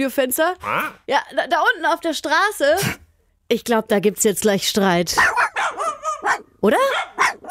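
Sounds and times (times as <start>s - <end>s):
speech: 0.0s - 5.4s, 6.6s - 7.1s
two dogs barking while playing: 5.2s - 7.4s.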